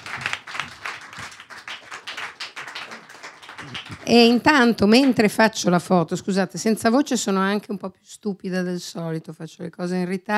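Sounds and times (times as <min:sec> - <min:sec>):
audience applauding: 0:00.0 - 0:05.2
speech: 0:03.6 - 0:10.3.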